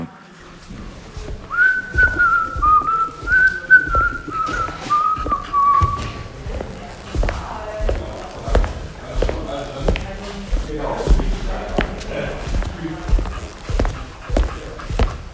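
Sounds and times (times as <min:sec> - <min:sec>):
soft thumps and taps: 0:00.6 - 0:15.3
person whistling a short slow melody: 0:01.5 - 0:06.0.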